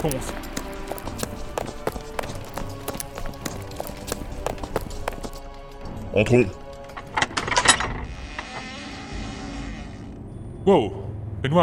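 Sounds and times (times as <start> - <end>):
speech: 0.0 - 0.5, 6.2 - 6.6, 10.6 - 11.6
running footsteps: 0.0 - 7.5.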